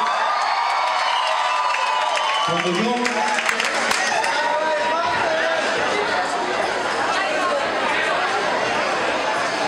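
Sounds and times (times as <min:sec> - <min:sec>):
large crowd cheering and applauding: 0:00.0 - 0:05.4
scattered shouts and whoops from crowd: 0:00.0 - 0:05.6
crowd murmur: 0:03.3 - 0:09.6.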